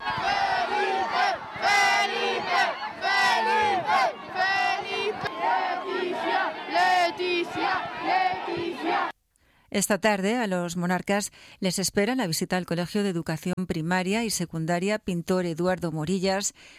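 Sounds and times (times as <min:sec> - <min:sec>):
large crowd cheering and chanting names of the king and queen at the Plaza de España: 0:00.0 - 0:09.1
speech: 0:09.7 - 0:16.7.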